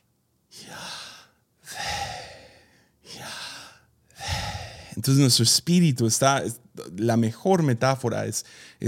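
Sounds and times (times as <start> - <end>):
slow deliberate airy breathing: 0.5 - 5.0
speech: 5.0 - 8.8.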